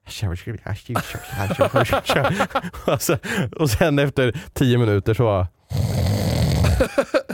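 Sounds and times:
speech: 0.2 - 5.9
laughter: 1.0 - 3.4, 6.7 - 7.3
voice mimicking a man snoring in bed: 5.6 - 6.9.

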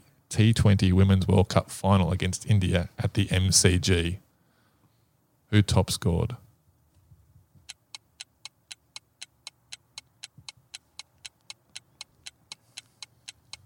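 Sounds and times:
speech: 0.3 - 4.2, 5.5 - 6.4
quiz countdown clock ticking: 7.6 - 13.6.

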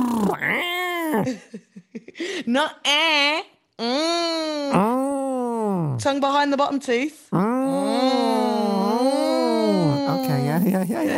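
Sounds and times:
voice imitating toddler's toy car vroom noise: 0.0 - 1.3, 4.7 - 6.0, 7.3 - 11.1
speech: 1.1 - 5.1, 5.8 - 8.2, 10.2 - 11.1.

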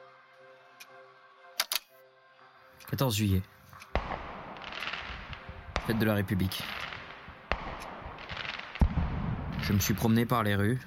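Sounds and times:
speech: 2.8 - 3.6, 5.9 - 6.9, 9.7 - 10.8
firecrackers exploding in the streets on 14 July: 4.0 - 10.1.

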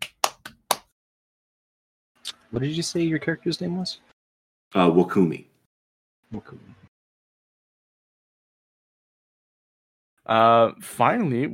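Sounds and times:
sharp hand claps: 0.0 - 0.9
speech: 2.5 - 4.1, 4.7 - 5.5, 6.3 - 6.8, 10.3 - 11.5.

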